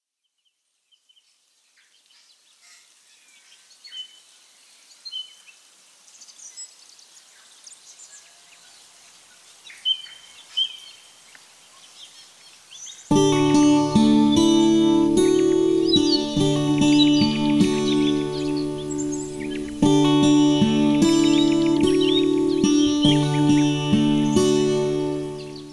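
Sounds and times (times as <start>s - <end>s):
ambient organ: 13.1s - 25.7s.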